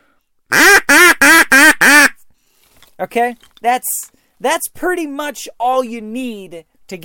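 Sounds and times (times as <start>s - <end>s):
duck greeting call quacks on a duck call: 0.5s - 2.2s
speech: 3.1s - 7.0s.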